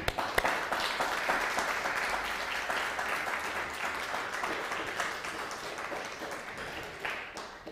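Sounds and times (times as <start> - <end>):
audience applause: 0.0 - 7.7.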